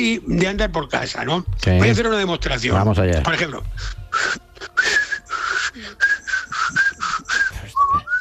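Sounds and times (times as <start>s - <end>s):
speech: 0.0s - 4.4s
person whistling a simple trill: 4.1s - 8.1s.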